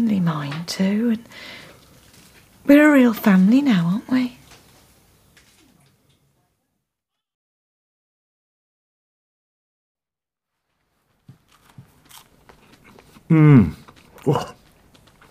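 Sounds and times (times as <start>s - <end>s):
speech: 0.0s - 1.6s, 2.6s - 4.4s, 13.3s - 14.6s
person biting and chewing a cheese and ham toastie: 11.0s - 15.2s.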